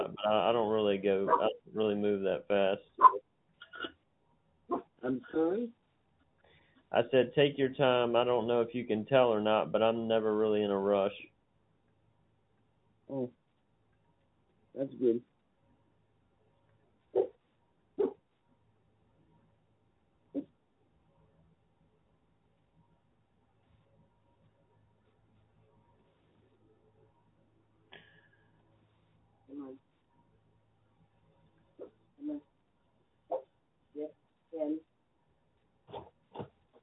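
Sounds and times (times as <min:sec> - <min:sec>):
speech: 0:00.3 - 0:03.2, 0:05.0 - 0:05.8, 0:06.9 - 0:11.3, 0:13.1 - 0:13.4, 0:14.8 - 0:15.3
small dog barking at door: 0:03.0 - 0:03.2, 0:17.2 - 0:17.4, 0:18.0 - 0:18.2
small dog whining at door: 0:18.0 - 0:18.2.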